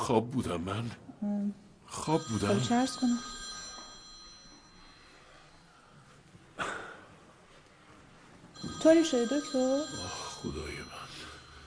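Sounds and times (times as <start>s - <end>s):
speech: 0.0s - 3.4s, 8.8s - 10.9s
doctor's mobile phone ringing with a tonal ringtone: 1.9s - 5.4s, 8.6s - 11.6s.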